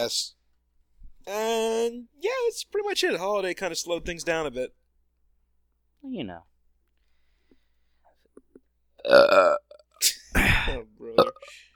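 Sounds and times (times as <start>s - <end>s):
speech: 0.0s - 0.4s, 1.3s - 4.8s, 6.0s - 6.5s, 9.0s - 11.7s
person belching: 9.0s - 11.6s.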